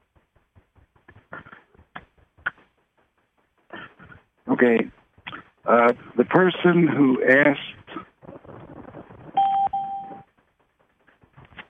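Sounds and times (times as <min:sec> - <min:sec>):
speech: 0:04.6 - 0:05.0, 0:05.7 - 0:07.8
two-tone electronic entry notification chime: 0:09.4 - 0:10.2.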